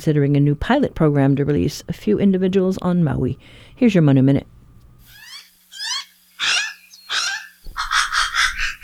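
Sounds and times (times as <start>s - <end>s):
speech: 0.0s - 4.5s
Hawaiian crow calls: 5.8s - 8.8s.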